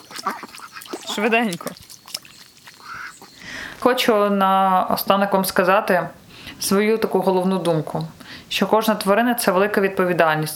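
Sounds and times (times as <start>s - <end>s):
several ducks quacking in short nasal bursts: 0.0s - 3.6s
speech: 1.2s - 1.8s, 3.8s - 10.5s.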